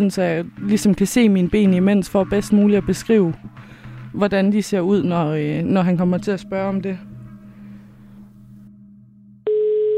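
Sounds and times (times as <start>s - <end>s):
speech: 0.0s - 7.1s
telephone ringing tone during call: 9.4s - 9.9s.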